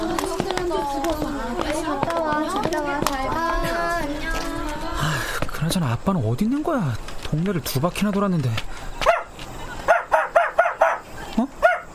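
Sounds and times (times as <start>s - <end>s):
faint noise: 0.0s - 11.9s
speech: 5.7s - 8.8s
male mixed-breed dog barking: 9.0s - 9.3s, 9.9s - 11.9s.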